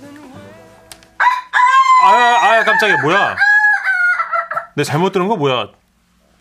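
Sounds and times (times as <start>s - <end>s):
rooster crowing: 1.2s - 4.8s
speech: 2.0s - 3.5s, 4.8s - 5.8s.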